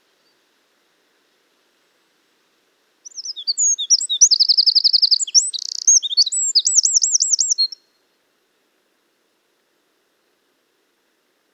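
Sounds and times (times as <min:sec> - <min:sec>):
Eurasian wren Troglodytes troglodytes song with chirps, rattling trill and warbled notes: 0:03.0 - 0:07.8.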